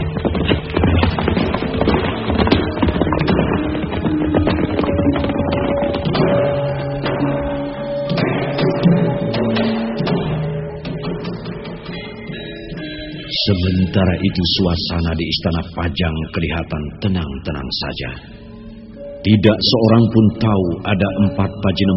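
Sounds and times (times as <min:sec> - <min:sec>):
horse hooves clip-clopping at a riding pace: 0:00.0 - 0:13.1
speech: 0:14.0 - 0:18.4, 0:19.2 - 0:21.9.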